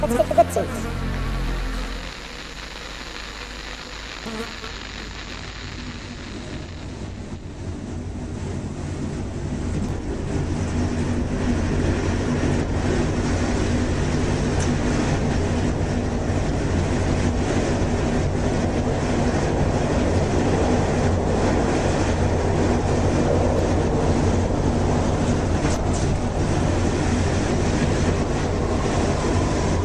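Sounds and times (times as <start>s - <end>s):
speech: 0.0s - 1.2s, 4.2s - 5.0s
Metro Red Line subway train rumbling along its rails: 7.6s - 29.8s.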